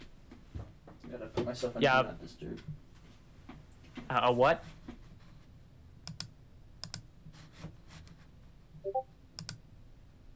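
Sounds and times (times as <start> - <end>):
speech: 1.1 - 2.8, 4.1 - 4.8
computer mouse and keyboard clicks: 6.1 - 7.1, 9.4 - 9.6.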